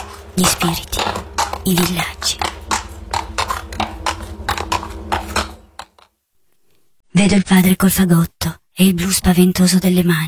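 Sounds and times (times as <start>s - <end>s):
low rumbling background: 0.0s - 6.0s
donkey hooves clip-clopping: 0.0s - 6.1s
speech: 0.4s - 2.5s, 7.2s - 10.2s.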